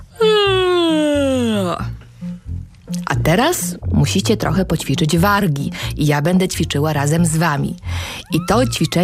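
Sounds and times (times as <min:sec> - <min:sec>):
soft rhythmic backing music: 0:00.0 - 0:09.0
long loud exaggerated yawn: 0:00.1 - 0:02.0
speech: 0:03.3 - 0:09.0.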